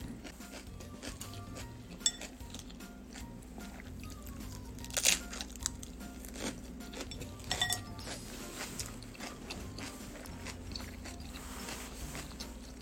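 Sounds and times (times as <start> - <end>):
crunching homemade cucumber and lettuce salad being chewed: 0.2 - 12.7
utensil clinks: 7.1 - 8.0.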